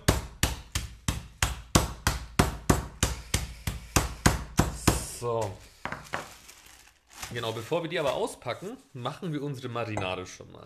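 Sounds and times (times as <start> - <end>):
meat mallet pounding chicken breast flat: 0.0 - 5.2
speech: 5.2 - 5.7, 7.3 - 10.6.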